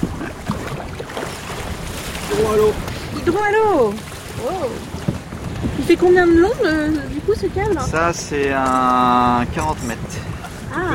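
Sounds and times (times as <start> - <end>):
wind blowing at sea aboard a boat: 0.0 - 10.9
speech: 2.4 - 5.0, 5.9 - 10.9.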